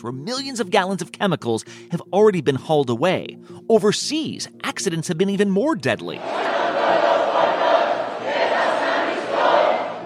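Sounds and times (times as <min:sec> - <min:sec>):
speech: 0:00.0 - 0:07.1
large protest crowd shouting and roaring: 0:06.2 - 0:10.0.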